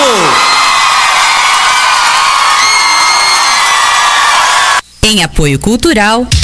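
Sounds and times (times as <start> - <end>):
audience applause: 0.0 - 4.8
speech: 5.0 - 6.4.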